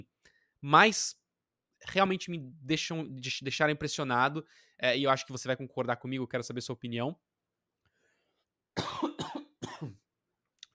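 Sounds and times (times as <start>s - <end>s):
speech: 0.6s - 1.2s, 1.8s - 7.3s
harsh cough: 8.8s - 10.1s.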